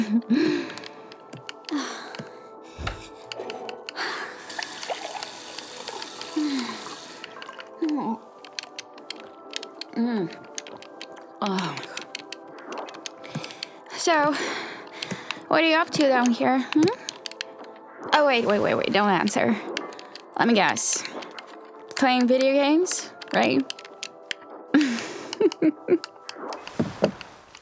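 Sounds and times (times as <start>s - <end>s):
soft breathy vocal gasps and sighs: 0.0s - 5.2s, 6.2s - 8.6s, 9.6s - 15.5s, 24.4s - 25.6s
water running into a glass: 4.4s - 7.7s
speech: 14.1s - 14.7s, 15.5s - 17.0s, 18.2s - 19.7s, 20.4s - 21.1s, 22.0s - 23.8s.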